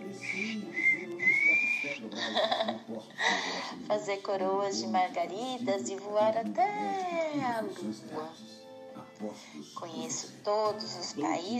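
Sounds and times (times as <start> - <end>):
person whistling a short melodic phrase: 0.2 - 2.1
laughter: 2.0 - 3.5
speech: 2.3 - 8.5, 9.2 - 11.5.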